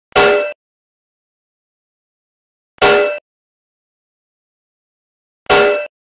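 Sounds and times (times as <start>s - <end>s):
lingdang bell: 0.2s - 0.6s, 2.8s - 3.2s, 5.5s - 6.0s.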